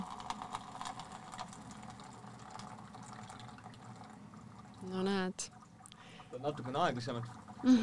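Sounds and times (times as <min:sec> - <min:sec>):
boiling water pouring from an instant hot-water dispenser: 0:00.0 - 0:07.8
low mechanical pump hum of a hot-water dispenser: 0:00.0 - 0:07.8
speech: 0:04.9 - 0:05.6, 0:06.4 - 0:07.8.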